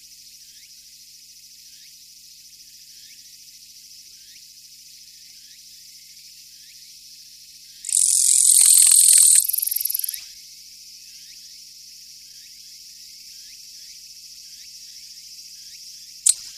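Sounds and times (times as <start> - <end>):
Japanese katydid buzzing: 7.9 - 10.2
sharp click: 16.3 - 16.5.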